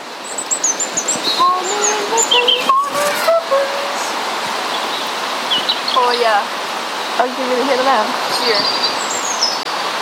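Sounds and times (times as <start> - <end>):
steady broadband hiss: 0.0 - 9.9
blackbird singing: 0.2 - 6.2, 8.4 - 9.7.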